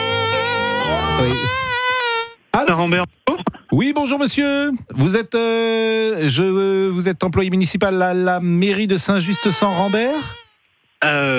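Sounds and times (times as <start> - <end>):
voice imitating a mosquito buzz on a phone call: 0.0 - 2.4, 9.2 - 10.6
speech: 1.2 - 1.6, 2.6 - 10.4, 11.0 - 11.3.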